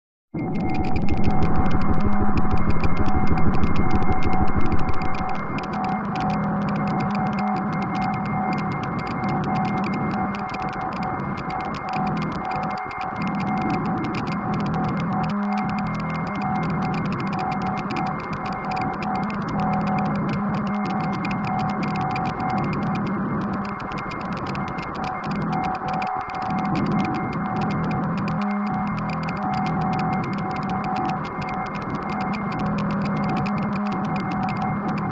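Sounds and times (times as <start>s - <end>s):
feedback noise: 0.4s - 35.1s.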